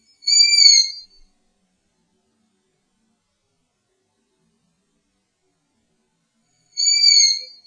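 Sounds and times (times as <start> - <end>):
bird calling at night: 0.3 - 1.0, 6.8 - 7.6.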